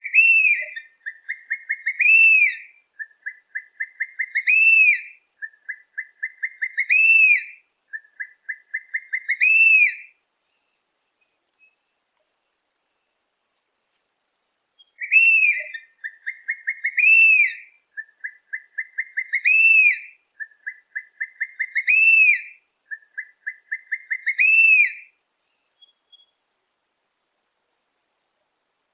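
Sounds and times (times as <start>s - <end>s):
harpy eagle calling: 0.0s - 10.0s, 14.8s - 25.1s.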